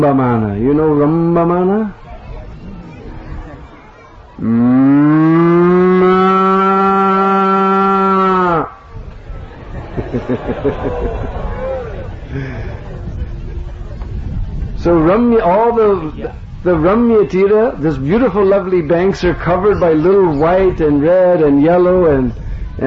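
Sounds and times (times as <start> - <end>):
speech: 0.0 - 2.1, 4.4 - 5.3, 10.1 - 11.6, 12.3 - 12.9, 14.8 - 22.8
people chattering: 0.0 - 22.8
cow mooing: 4.4 - 8.8
laughter: 9.4 - 14.0.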